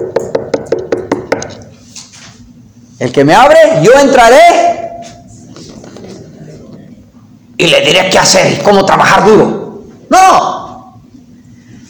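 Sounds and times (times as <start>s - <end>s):
knuckles knocking on a door: 0.0s - 1.5s
speech: 3.0s - 4.6s, 7.6s - 10.6s.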